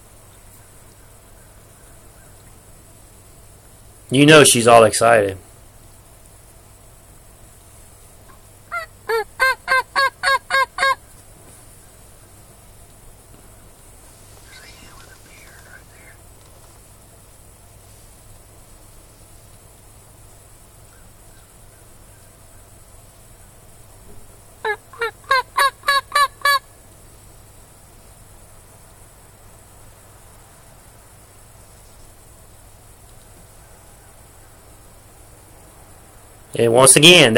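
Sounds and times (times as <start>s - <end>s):
speech: 4.1s - 5.5s, 36.6s - 37.3s
turkey yelping to call a hen and jakes: 8.3s - 11.0s, 24.6s - 26.6s.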